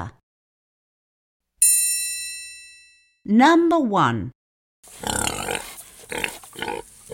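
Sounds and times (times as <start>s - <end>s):
speech: 3.3s - 5.1s, 6.1s - 7.1s
pig oinking and grunting: 4.9s - 7.1s.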